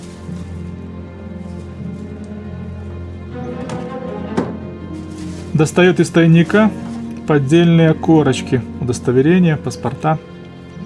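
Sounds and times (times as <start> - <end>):
man knocking on wooden desk drawers in an apartment: 3.5 - 4.7
speech: 5.6 - 10.3.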